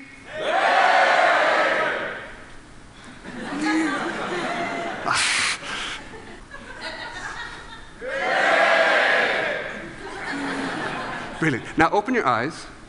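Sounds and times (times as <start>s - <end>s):
audience members shouting together on a count: 0.3s - 2.2s, 8.0s - 9.7s
laughter: 3.2s - 5.1s, 6.0s - 8.0s, 9.7s - 11.8s
speech: 11.5s - 12.8s.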